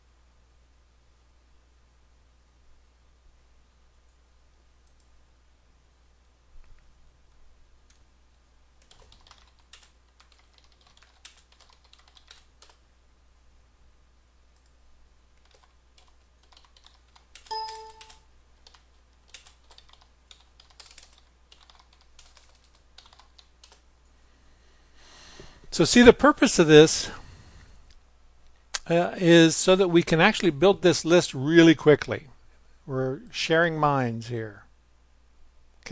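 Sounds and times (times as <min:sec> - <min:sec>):
typing on a computer keyboard: 0:08.8 - 0:12.8, 0:15.4 - 0:23.8
brief electronic tone: 0:17.5 - 0:18.2
speech: 0:25.8 - 0:27.2, 0:28.9 - 0:32.3, 0:32.9 - 0:34.6.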